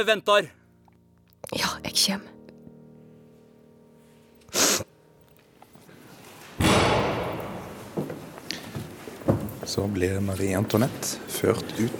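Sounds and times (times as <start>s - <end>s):
speech: 0.0s - 0.6s, 1.5s - 2.3s, 9.7s - 11.9s
heavy door opening or shutting with a thud: 6.6s - 8.4s.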